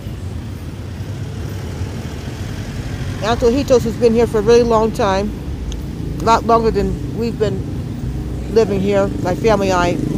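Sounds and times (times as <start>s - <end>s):
busy street traffic with engine drone in the town of Paute: 0.0s - 10.1s
speech: 3.2s - 5.4s, 6.2s - 7.7s, 8.5s - 10.1s.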